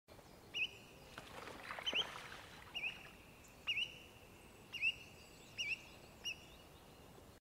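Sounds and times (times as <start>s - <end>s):
spotted redshank calling: 0.5s - 6.6s.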